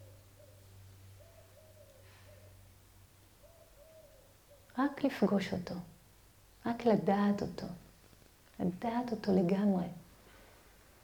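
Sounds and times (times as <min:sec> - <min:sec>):
bird calling with soft owl-like hooting notes: 0:00.0 - 0:02.6, 0:03.4 - 0:04.7
speech: 0:04.8 - 0:06.0, 0:06.8 - 0:07.8, 0:08.6 - 0:10.0.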